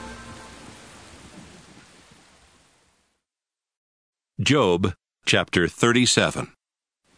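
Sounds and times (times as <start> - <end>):
thunder rumbling: 0.0 - 2.8
heavy rain pouring down: 0.0 - 3.2
speech: 4.4 - 6.6.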